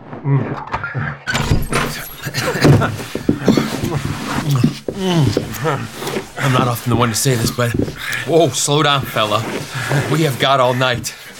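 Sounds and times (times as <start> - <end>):
door opening with a sudden rush of sound: 0.0 - 10.2
speech: 0.2 - 11.2
laughter: 1.7 - 11.3.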